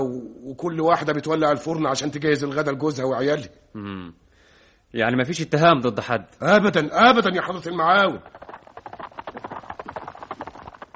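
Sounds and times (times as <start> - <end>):
speech: 0.6 - 4.2, 4.9 - 8.4
horse hooves clip-clopping trotting to a village headman's house: 7.4 - 10.9.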